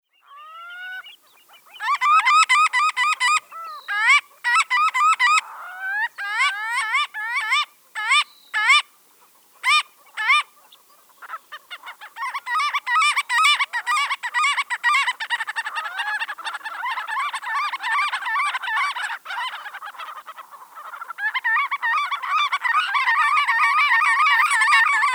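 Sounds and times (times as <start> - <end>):
Limosa fedoa water birds: 0.0 - 25.1.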